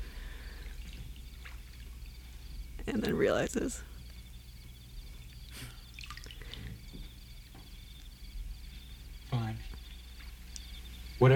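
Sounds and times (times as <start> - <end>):
water sloshing and splashing as a man splashes: 0.0 - 7.1
speech: 2.9 - 3.9, 11.2 - 11.3.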